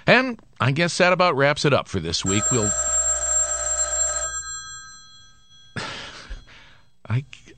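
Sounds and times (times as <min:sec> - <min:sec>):
speech: 0:00.2 - 0:02.9, 0:07.1 - 0:07.4
telephone bell ringing: 0:02.2 - 0:07.0
breathy sigh: 0:05.8 - 0:07.0.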